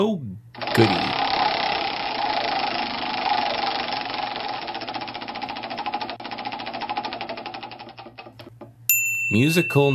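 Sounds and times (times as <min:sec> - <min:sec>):
speech: 0:00.0 - 0:01.2, 0:09.3 - 0:09.9
prize wheel spinning after a lever is pulled: 0:00.6 - 0:08.4.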